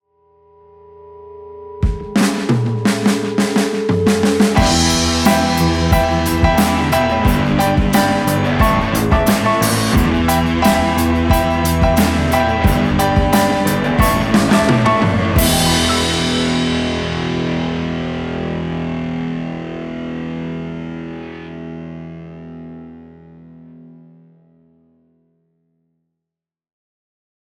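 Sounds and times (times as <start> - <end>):
piano: 1.6 - 23.6
drums: 1.8 - 20.7
guitars: 1.8 - 24.4.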